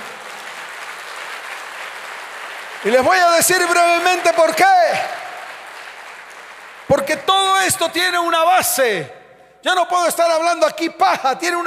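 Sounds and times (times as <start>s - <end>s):
audience at a church service applauding: 0.0s - 8.3s
speech: 2.8s - 5.2s, 6.9s - 11.6s.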